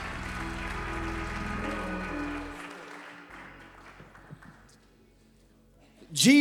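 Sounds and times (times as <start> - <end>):
audience applause: 0.0 - 4.8
sustained low keyboard chords: 0.0 - 5.8
speech: 6.2 - 6.3.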